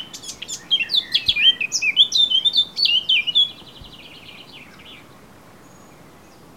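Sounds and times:
Eurasian blackcap Sylvia atricapilla singing fluty whistled phrases: 0.0 - 5.1.

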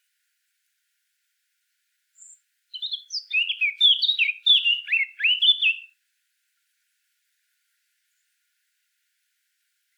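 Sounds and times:
Eurasian blackcap singing: 2.7 - 5.9.

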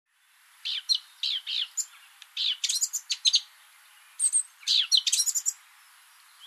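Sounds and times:
Eurasian blackcap Sylvia atricapilla twittering scratchy notes: 0.6 - 3.5, 4.1 - 5.6.

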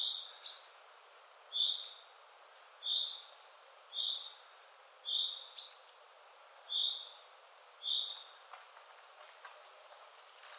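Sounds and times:
common chaffinch Fringilla coelebs chirping: 0.0 - 0.9, 1.5 - 6.0, 6.7 - 8.4
soft background noise: 0.0 - 10.5.

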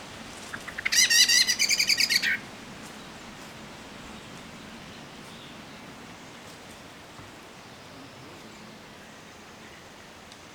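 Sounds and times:
common blackbird Turdus merula rapid harsh chattering series: 0.5 - 2.4.

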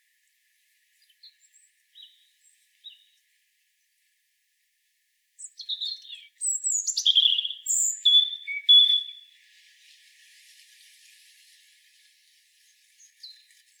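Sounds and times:
European robin Erithacus rubecula song: 1.3 - 3.1, 5.4 - 9.4.

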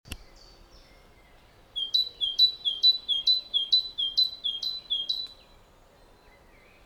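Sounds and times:
great tit Parus major singing bright two-part notes: 0.2 - 5.6.

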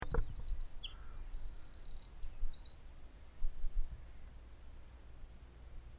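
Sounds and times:
Eurasian wren Troglodytes troglodytes trilling song: 0.0 - 3.4.

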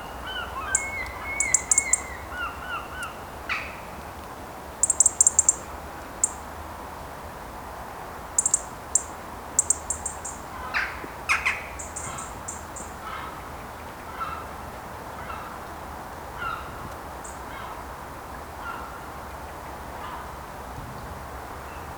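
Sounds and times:
European robin Erithacus rubecula giving rapid high ticking calls: 0.0 - 3.9, 4.7 - 6.5, 8.3 - 14.5
steady low background noise: 0.0 - 21.9.

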